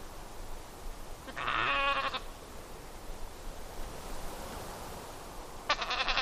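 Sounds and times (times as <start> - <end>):
steady background hiss: 0.0 - 6.2
Dall sheep bleating in Denali, Alaska: 1.3 - 2.2, 5.7 - 6.2.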